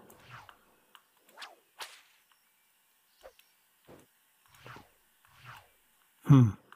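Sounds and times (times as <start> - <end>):
video game whip cracks: 0.0 - 0.6, 1.3 - 2.2, 4.5 - 5.7
speech: 6.3 - 6.6.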